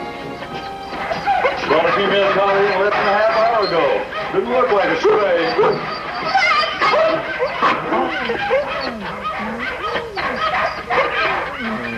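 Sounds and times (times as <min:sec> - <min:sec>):
dog barking and yipping excitedly with high whines: 0:00.5 - 0:11.9.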